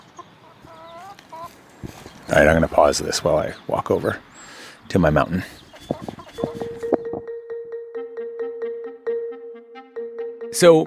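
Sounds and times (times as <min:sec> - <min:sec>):
chickens clucking: 0:00.0 - 0:07.2
speech: 0:01.8 - 0:04.3, 0:04.9 - 0:05.6, 0:10.6 - 0:10.8.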